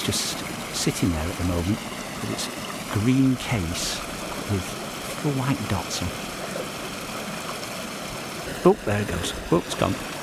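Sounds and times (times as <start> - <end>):
speech: 0.0 - 6.3, 8.6 - 10.2
flowing stream water rushing: 0.0 - 10.2.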